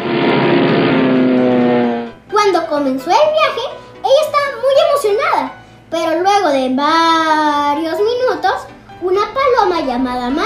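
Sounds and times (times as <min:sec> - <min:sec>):
propeller airplane engine drone: 0:00.0 - 0:02.2
speech: 0:02.7 - 0:10.4.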